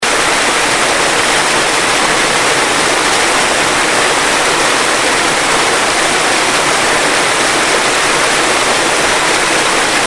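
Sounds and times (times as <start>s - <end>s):
gorge waterfall in Macedonia: 0.0s - 10.0s.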